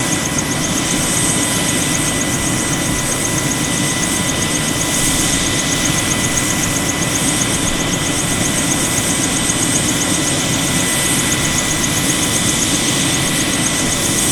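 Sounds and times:
Bell 212 helicopter idling: 0.0 - 14.2.

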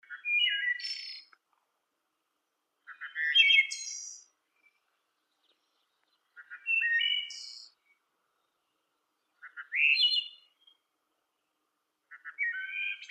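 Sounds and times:
blackbird singing: 0.0 - 1.4, 2.8 - 10.9, 12.1 - 13.0.

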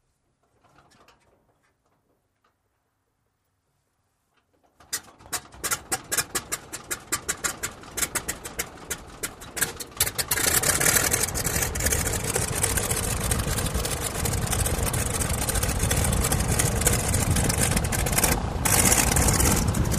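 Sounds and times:
propeller plane starting and idling heard from interior: 4.8 - 19.9.

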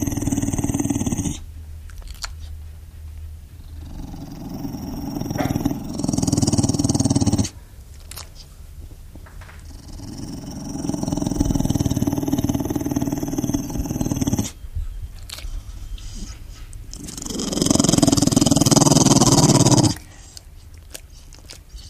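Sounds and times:
pit bull growling deeply: 0.0 - 1.5, 3.6 - 7.6, 9.6 - 14.6, 16.0 - 21.0.

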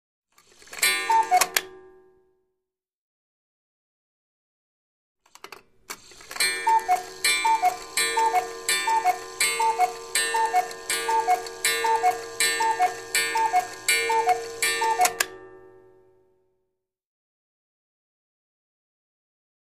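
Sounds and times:
cuckoo clock calling: 0.7 - 1.9, 6.0 - 16.1.

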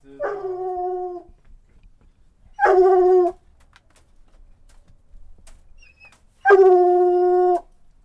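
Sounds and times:
Coon Hound dog howling: 0.2 - 1.4, 2.5 - 3.4, 5.8 - 7.7.

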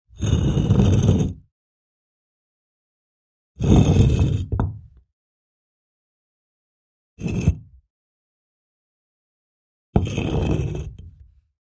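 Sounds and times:
heavy stone being pushed: 0.2 - 1.2, 3.6 - 4.8, 10.0 - 11.0.

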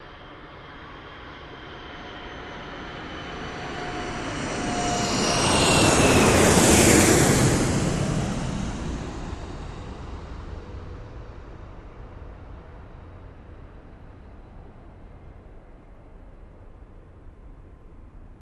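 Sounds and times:
jet flying over an airport: 2.7 - 11.5.

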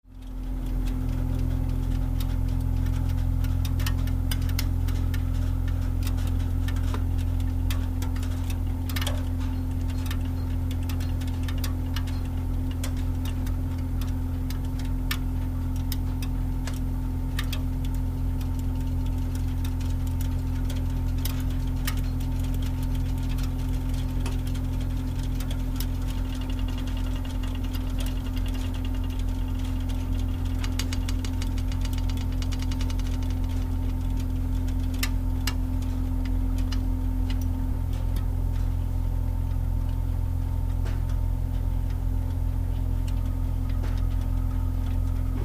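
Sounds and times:
hot water heater pip: 0.2 - 45.4.

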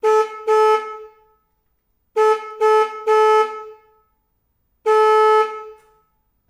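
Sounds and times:
forklift horn honking: 0.0 - 1.4, 2.1 - 4.1, 4.8 - 6.2.

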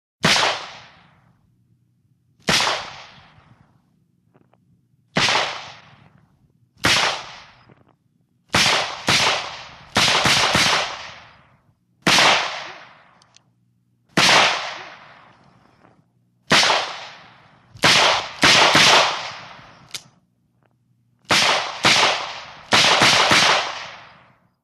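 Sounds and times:
pistol rapid fire exterior: 0.2 - 1.3, 2.4 - 3.5, 5.1 - 6.2, 6.8 - 7.7, 8.5 - 13.4, 14.1 - 15.4, 16.4 - 20.1, 21.3 - 24.4.

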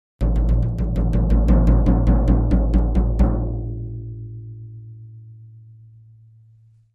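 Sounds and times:
low tom drums in C played slowly: 0.2 - 4.2.

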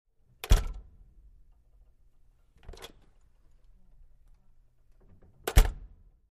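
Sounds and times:
push bar door closing: 0.4 - 1.0, 5.0 - 6.0.

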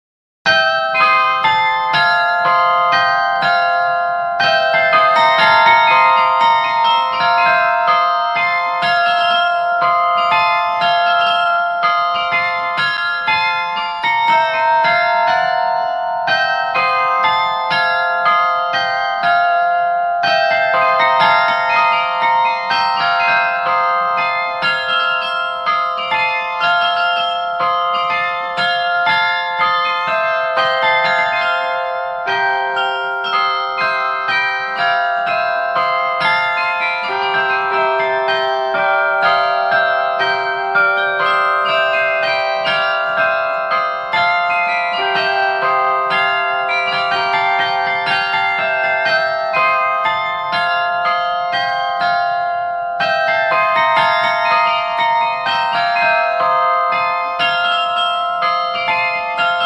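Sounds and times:
clock chimes ringing: 0.5 - 59.6.

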